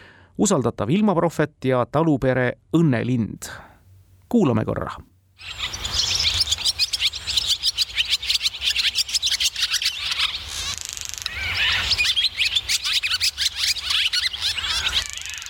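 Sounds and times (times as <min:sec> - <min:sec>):
speech: 0:00.4 - 0:03.7, 0:04.3 - 0:05.8
barn swallow twittering song: 0:05.4 - 0:15.4.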